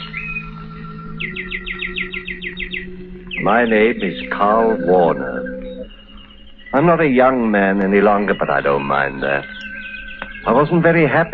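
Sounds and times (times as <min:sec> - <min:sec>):
bird whistling and trilling: 0:00.0 - 0:07.0, 0:07.9 - 0:10.6
speech: 0:01.2 - 0:01.8, 0:03.4 - 0:05.3, 0:06.7 - 0:09.6, 0:10.4 - 0:11.3
low steady hum: 0:02.8 - 0:11.2.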